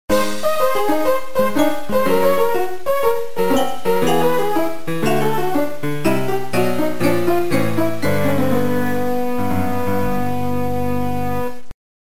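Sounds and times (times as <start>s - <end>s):
losing music jingle: 0.1s - 11.6s.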